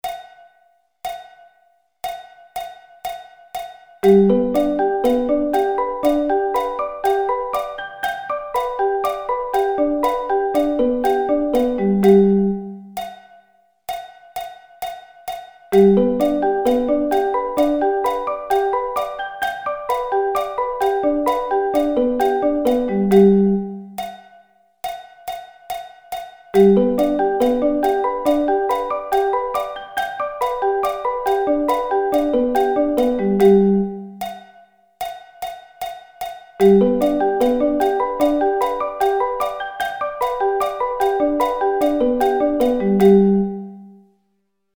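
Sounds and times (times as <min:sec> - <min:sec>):
arpeggio inversions: 0:04.0 - 0:12.9, 0:15.8 - 0:23.9, 0:26.6 - 0:34.2, 0:36.6 - 0:43.9.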